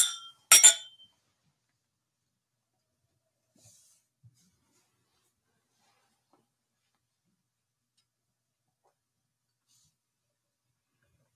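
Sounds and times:
glasses clinking together in a toast: 0:00.0 - 0:01.0.

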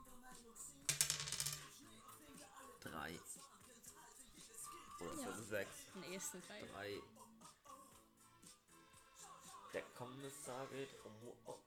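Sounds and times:
dice clattering across a hard tabletop: 0:00.8 - 0:01.8
speech: 0:02.8 - 0:03.6, 0:05.0 - 0:07.2, 0:09.7 - 0:11.6.

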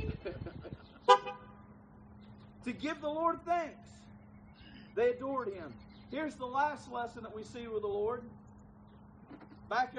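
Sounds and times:
hum: 0:00.0 - 0:09.9
car horn toot: 0:01.1 - 0:01.6
speech: 0:02.6 - 0:04.0, 0:05.0 - 0:08.4, 0:09.7 - 0:09.9.

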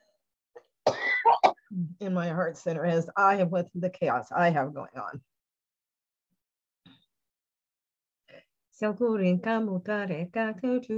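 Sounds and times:
harsh coughs: 0:00.9 - 0:01.6
speech: 0:01.8 - 0:05.3, 0:08.8 - 0:10.9.

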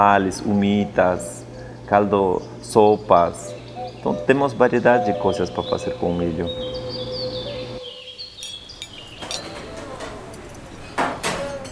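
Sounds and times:
speech: 0:00.0 - 0:06.8
steady hum: 0:00.0 - 0:11.2
dishes and pans clinking and clattering in a restaurant kitchen: 0:08.4 - 0:11.7.

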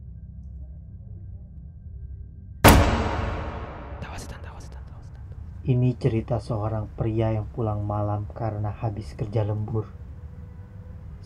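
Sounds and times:
toilet stall door slamming shut loudly: 0:02.7 - 0:04.8
faint low rumble: 0:02.7 - 0:05.3
speech: 0:05.6 - 0:10.0.

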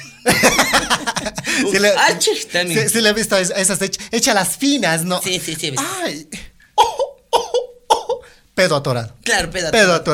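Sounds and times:
laughter: 0:00.0 - 0:03.1
speech: 0:01.6 - 0:06.5, 0:08.6 - 0:10.1
hoarse coughs: 0:06.8 - 0:08.3.

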